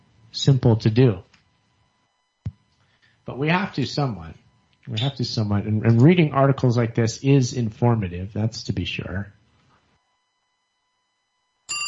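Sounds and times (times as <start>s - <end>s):
faint steady tone: 0.0s - 11.8s
speech: 0.4s - 1.3s, 3.3s - 9.4s
phone ringing with an incoming call: 11.7s - 11.8s.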